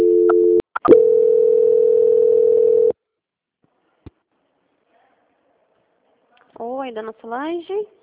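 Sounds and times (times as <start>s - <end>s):
telephone dial tone after a dropped call: 0.0s - 2.9s
speech: 6.9s - 8.0s.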